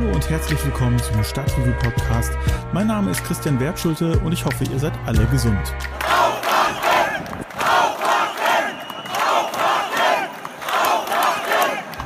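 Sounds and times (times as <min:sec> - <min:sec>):
speech: 0:00.2 - 0:06.0
crowd of protesters chanting in unison in front of a cathedral: 0:06.0 - 0:12.0.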